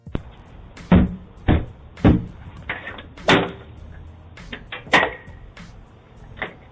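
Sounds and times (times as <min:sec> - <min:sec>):
banging on a front door: 0:00.9 - 0:02.4.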